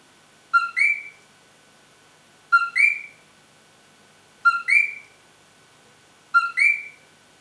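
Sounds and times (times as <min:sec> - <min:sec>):
Eleutherodactylus coqui frog calling: 0:00.5 - 0:01.2, 0:02.5 - 0:03.2, 0:04.4 - 0:05.2, 0:06.3 - 0:07.0.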